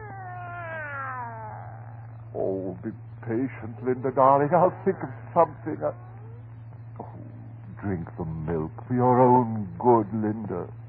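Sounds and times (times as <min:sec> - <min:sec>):
cat yowling: 0:00.0 - 0:07.3
steady low hum: 0:00.0 - 0:10.8
speech: 0:02.4 - 0:06.1, 0:07.8 - 0:10.8.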